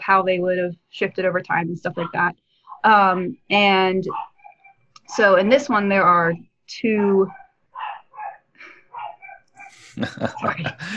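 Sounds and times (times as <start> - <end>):
speech: 0.1 - 4.3, 5.1 - 7.4, 10.0 - 10.9
pet hound dog barking: 4.1 - 4.3, 7.3 - 8.4, 9.0 - 9.4
laughter: 9.8 - 10.9.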